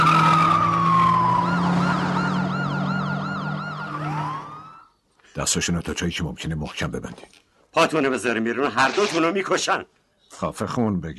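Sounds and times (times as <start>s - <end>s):
police car siren: 0.0s - 4.9s
speech: 5.4s - 11.1s.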